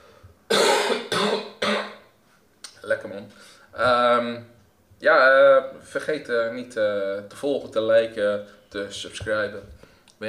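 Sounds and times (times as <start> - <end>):
person coughing: 0.5 - 2.0
speech: 3.2 - 10.2.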